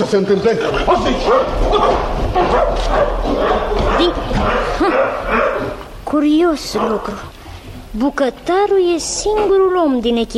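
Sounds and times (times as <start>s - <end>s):
speech: 0.0s - 10.3s
dog barking and yipping while lunging at a man: 1.1s - 5.9s, 6.7s - 7.3s.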